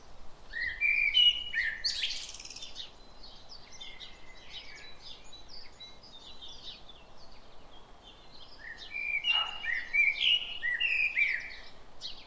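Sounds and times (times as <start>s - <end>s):
common blackbird Turdus merula song: 0.0s - 12.2s.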